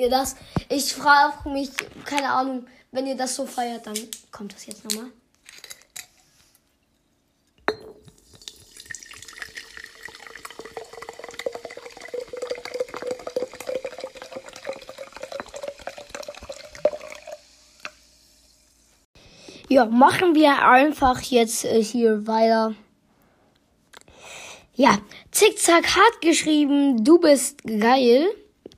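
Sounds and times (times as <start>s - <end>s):
speech: 0.0s - 5.7s, 19.8s - 22.8s, 24.8s - 28.4s
water running from a tap into a container: 8.2s - 18.8s.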